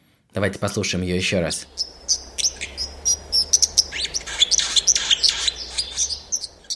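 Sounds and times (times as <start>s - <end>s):
speech: 0.4s - 2.5s
steady low rushing like running water: 1.0s - 6.7s
white-throated dipper singing: 1.6s - 6.7s.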